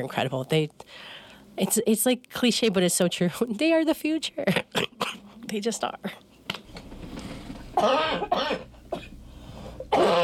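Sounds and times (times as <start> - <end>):
speech: 0.0 - 6.3, 7.8 - 8.7
harsh chesty coughs: 4.5 - 5.3, 7.8 - 9.2.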